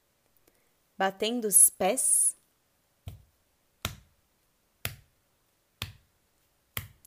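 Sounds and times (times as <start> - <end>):
speech: 1.0 - 2.4
hands slapping on belly: 3.0 - 4.2, 4.8 - 5.2, 5.8 - 6.1, 6.7 - 7.0.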